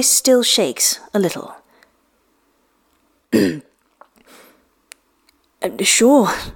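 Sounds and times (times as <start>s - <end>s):
speech: 0.0s - 1.6s, 3.3s - 3.7s, 5.6s - 6.5s
man clearing his throat: 3.3s - 3.7s.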